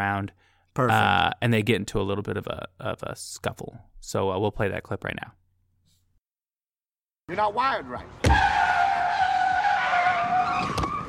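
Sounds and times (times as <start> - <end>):
speech: 0.0 - 5.4, 7.3 - 9.2
car tires squealing under hard braking: 8.2 - 11.0.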